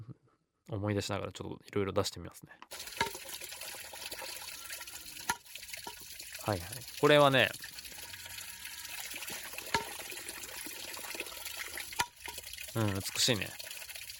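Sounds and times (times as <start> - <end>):
speech: 0.7 - 3.0, 6.4 - 7.7, 12.8 - 13.6
Japanese shishi-odoshi bamboo water fountain tipping knocks: 2.7 - 3.6, 5.2 - 6.1, 9.3 - 10.3, 11.9 - 13.1
trickling water: 2.7 - 14.1.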